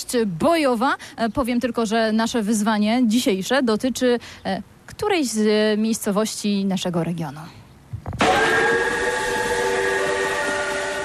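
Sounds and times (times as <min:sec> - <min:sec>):
speech: 0:00.1 - 0:07.6
narrow-gauge steam locomotive whistle at the Narrow Gauge Railway Museum in Wenecja Poland: 0:08.2 - 0:11.0.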